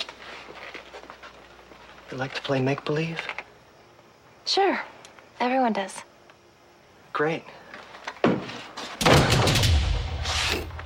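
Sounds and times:
speech: 2.1 - 3.4, 4.5 - 6.1, 7.2 - 7.6
door slamming shut: 8.2 - 10.8.

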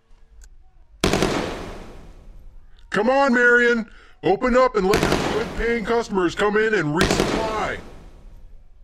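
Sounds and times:
loud gunfire: 1.0 - 2.5, 4.9 - 6.3, 6.9 - 8.5
speech: 2.9 - 7.9.

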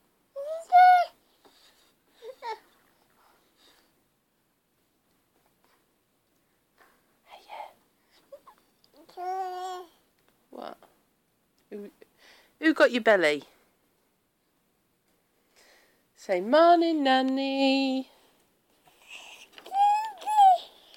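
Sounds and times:
baby happily babbling and cooing: 0.4 - 2.8, 8.3 - 10.0, 18.8 - 20.9
speech: 12.7 - 13.5, 16.3 - 18.1.

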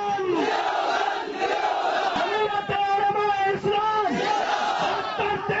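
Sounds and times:
large crowd of protesters chanting political slogans in unison: 0.2 - 2.7, 4.0 - 5.5.

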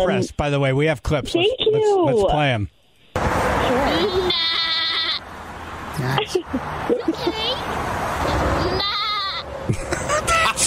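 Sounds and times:
speech: 0.0 - 4.6, 6.0 - 7.8
woman imitating goat bleats: 3.6 - 5.2, 8.6 - 9.4
laughter: 6.0 - 7.6, 9.6 - 10.6.

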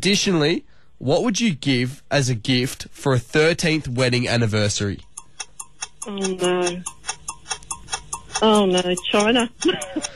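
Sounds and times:
speech: 0.0 - 5.1, 6.0 - 7.2, 8.4 - 10.1
quiz game countdown timer ticking: 4.9 - 10.1.

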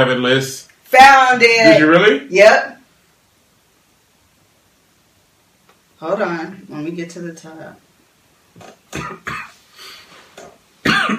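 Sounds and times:
speech: 0.0 - 2.7, 6.0 - 7.8, 8.6 - 9.4
harsh coughs: 8.9 - 9.6, 10.8 - 11.1.

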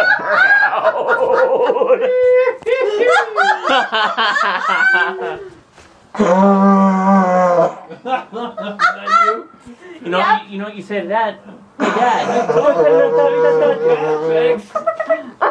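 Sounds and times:
buzzing laughter blown through a vuvuzela horn: 0.0 - 5.6, 7.8 - 9.5, 11.8 - 15.4
speech: 4.1 - 5.6, 6.2 - 7.0, 8.0 - 15.4.

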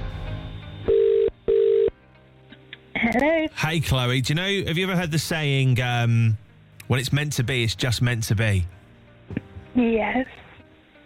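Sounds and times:
telephone ringback tone after a call is dialed: 0.8 - 2.0
speech: 3.1 - 10.4.

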